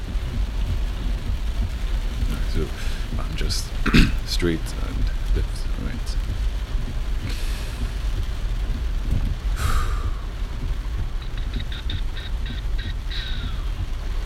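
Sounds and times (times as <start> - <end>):
deep vehicle engine rumble: 0.0 - 14.2
heavy rain roaring around a moving vehicle: 0.0 - 14.2
speech: 3.4 - 5.6.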